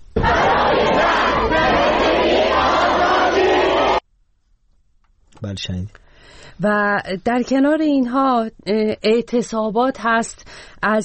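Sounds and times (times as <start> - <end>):
crowd of students chanting slogans at a protest gathering at a university: 0.2 - 4.0
speech: 5.4 - 11.0.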